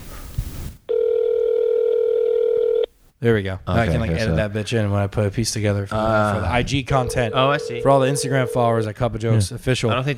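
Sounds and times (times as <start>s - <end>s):
brief burst of noise: 0.0s - 0.9s
outgoing telephone call electronic ringing tone: 0.9s - 2.9s, 7.0s - 8.8s
speech: 3.2s - 10.1s.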